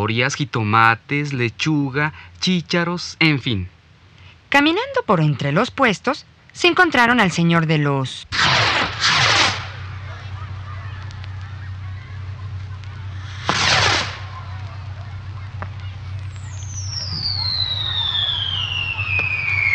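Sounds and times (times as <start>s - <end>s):
speech: 0.0s - 3.8s, 4.5s - 8.6s
steady low hum: 8.2s - 19.7s
firework bursts crackling from a fireworks castle being lit: 8.3s - 19.7s
thin high whistle: 16.3s - 19.7s.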